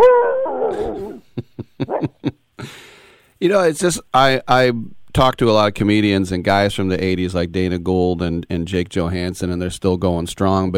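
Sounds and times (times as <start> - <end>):
dog howling: 0.0 - 1.2
speech: 3.4 - 10.7.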